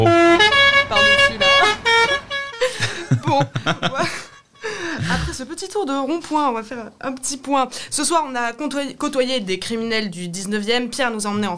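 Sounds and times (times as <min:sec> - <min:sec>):
car horn honking while driving around a roundabout: 0:00.0 - 0:03.0, 0:03.7 - 0:05.0
laughter: 0:02.6 - 0:05.4
speech: 0:05.4 - 0:11.5.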